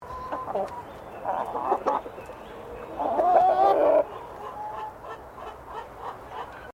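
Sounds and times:
chicken clucking: 0:00.0 - 0:06.7.

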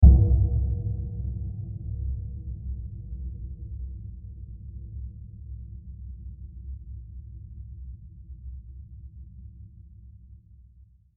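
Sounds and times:
long diffuse low impact: 0:00.0 - 0:05.2.

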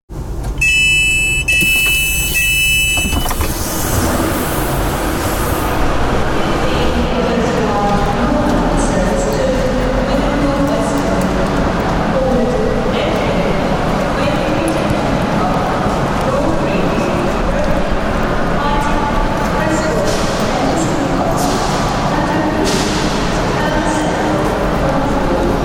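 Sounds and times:
train station ambience: 0:00.1 - 0:25.6
train arriving: 0:00.2 - 0:25.6
automatic train doors: 0:00.3 - 0:07.0.

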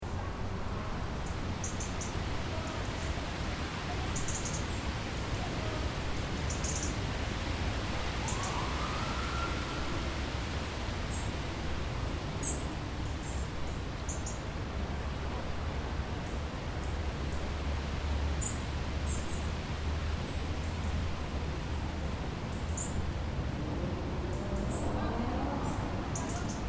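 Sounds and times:
wind rustling in tall large trees in a park in central Athens Greece: 0:00.0 - 0:26.6.

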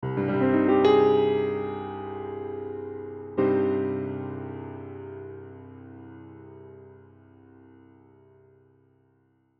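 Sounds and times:
minor piano melody: 0:00.0 - 0:08.9.

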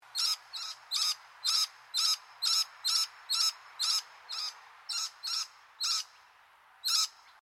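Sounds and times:
scaly-breasted lorikeet screeching calls: 0:00.1 - 0:06.2, 0:06.8 - 0:07.2.

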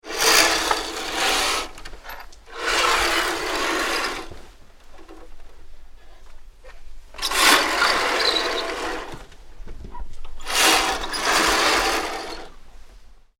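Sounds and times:
curtain pulled along metal runner: 0:00.0 - 0:05.2, 0:07.2 - 0:09.3, 0:10.4 - 0:12.6.

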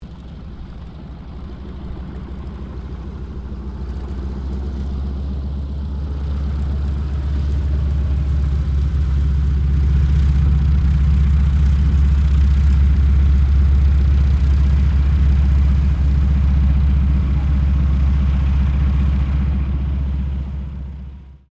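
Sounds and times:
AT-6D Harvard MK III aircraft taxiing: 0:00.0 - 0:21.5.

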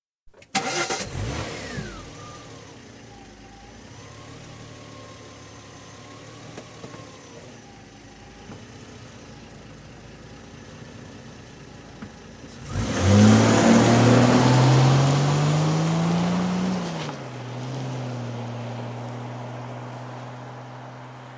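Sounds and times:
1986 Jaguar Sovereign 3.6 litre engine starting outside: 0:00.4 - 0:21.3.

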